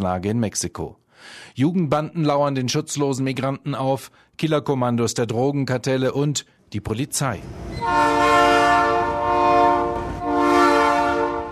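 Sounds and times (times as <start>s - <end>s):
speech: 0.0s - 8.6s
freight train horn blasts: 7.8s - 11.5s.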